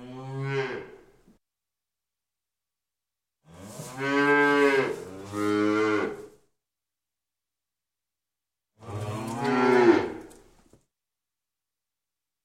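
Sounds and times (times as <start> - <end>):
cow mooing: 0.0 - 1.0, 3.5 - 6.3, 8.8 - 10.3.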